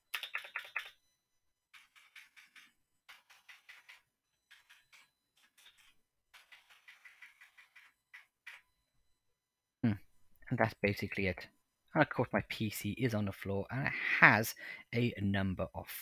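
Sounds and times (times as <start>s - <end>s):
typing on a mechanical keyboard: 0.1s - 1.0s, 1.8s - 8.6s
speech: 10.5s - 15.9s.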